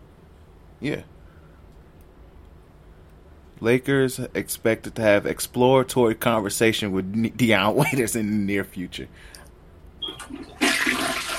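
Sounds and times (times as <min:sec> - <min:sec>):
speech: 0:00.8 - 0:01.2, 0:03.6 - 0:09.4
toilet flushing: 0:10.0 - 0:11.3.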